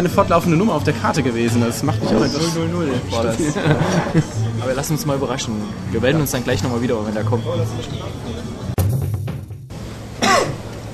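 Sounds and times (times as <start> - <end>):
speech: 0.0 - 8.5
laughter: 2.0 - 4.8
bump: 8.8 - 9.8
cough into a microphone: 10.2 - 10.7.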